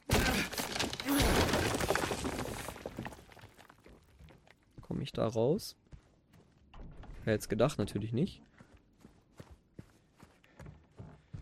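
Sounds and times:
wall being hammered in with a loud crash: 0.0 - 3.6
wall debris crumbling and rattling: 0.0 - 4.6
speech: 5.1 - 5.8, 7.2 - 8.5.

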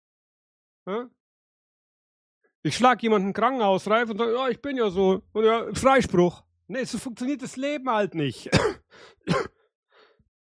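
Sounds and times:
speech: 0.8 - 1.2, 2.6 - 9.6
throat clearing after choking: 8.5 - 9.6.

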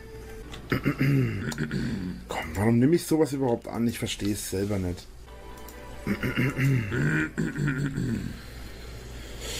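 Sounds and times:
speech: 0.7 - 5.2, 6.0 - 8.5
short voiced grumble: 6.1 - 8.4.

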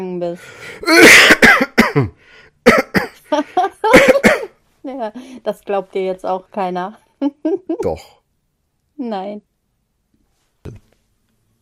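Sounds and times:
speech: 0.0 - 4.1, 4.9 - 8.2, 9.0 - 9.5
person coughing harshly: 0.8 - 3.2, 3.9 - 4.5.

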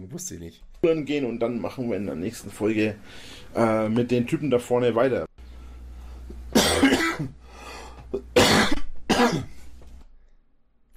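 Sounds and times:
speech: 0.0 - 5.3, 8.1 - 8.4
person coughing: 6.5 - 7.4, 8.1 - 9.6.

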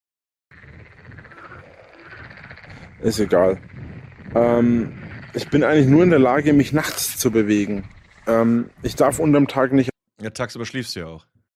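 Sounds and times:
dense loud chorus of many frogs croaking: 0.5 - 9.8
speech: 3.0 - 3.8, 4.4 - 11.3.

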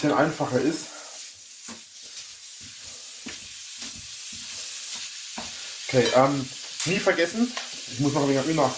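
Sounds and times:
speech: 0.0 - 1.0, 5.9 - 8.7
minced meat frying in a pan: 0.0 - 8.7.

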